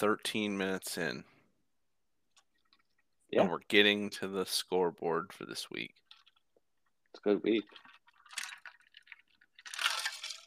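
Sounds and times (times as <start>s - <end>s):
speech: 0.0s - 1.3s, 3.3s - 6.0s, 7.2s - 7.8s
gulping a ranch water drink: 7.6s - 10.4s.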